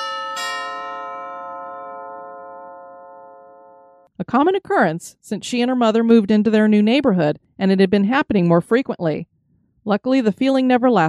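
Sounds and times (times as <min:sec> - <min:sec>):
doorbell at a house's front door chiming: 0:00.0 - 0:04.1
speech: 0:04.2 - 0:11.0.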